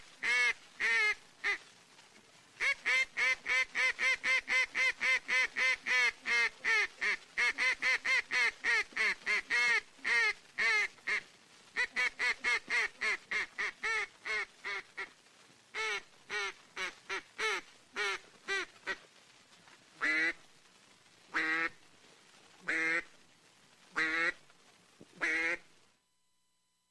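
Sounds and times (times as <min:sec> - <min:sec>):
duck call quacking in flooded timber at Stuttgart Arkansas: 0:00.2 - 0:01.6, 0:02.6 - 0:15.1, 0:15.7 - 0:19.0, 0:20.0 - 0:20.4, 0:21.3 - 0:21.8, 0:22.7 - 0:23.1, 0:24.0 - 0:24.4, 0:25.2 - 0:25.7.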